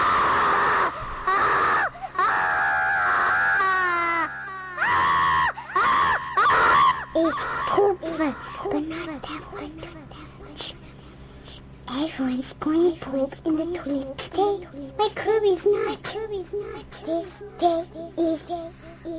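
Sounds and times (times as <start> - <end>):
child screaming loudly and shrilly: 0.0 - 8.6
speech: 12.2 - 18.8.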